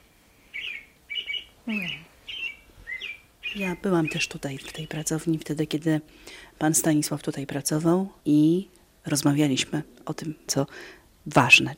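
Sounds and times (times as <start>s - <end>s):
bird clock in a studio chiming recorded birdsong: 0.5s - 5.1s
voice murmuring: 1.6s - 2.1s
speech: 1.7s - 2.1s, 3.6s - 11.7s.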